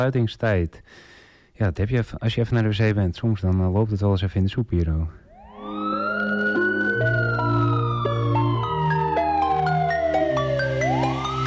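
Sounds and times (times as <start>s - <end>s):
speech: 0.0s - 5.2s
police siren wailing: 5.3s - 11.4s
layered stepping tone: 5.4s - 11.4s.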